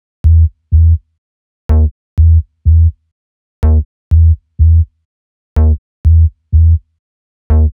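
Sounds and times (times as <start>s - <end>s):
bass loop in E: 0.2s - 1.0s, 1.7s - 3.0s, 3.6s - 4.9s, 5.6s - 6.8s, 7.5s - 7.7s.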